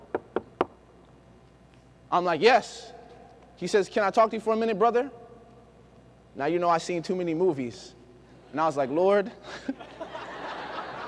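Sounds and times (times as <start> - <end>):
sharp knocks on a door: 0.0 - 0.7
speech: 2.1 - 3.0, 3.6 - 5.2, 6.4 - 10.0
laughter: 9.4 - 11.0.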